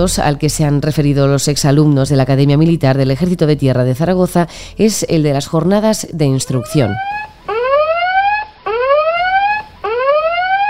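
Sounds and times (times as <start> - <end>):
speech: 0.0 - 7.3
loud electronic alarm siren whooping upward: 6.4 - 10.6.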